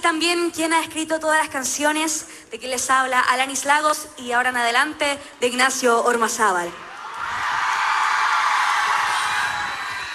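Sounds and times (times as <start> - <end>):
speech: 0.0 - 6.9
large audience at a live band concert shouting and cheering: 6.9 - 10.1.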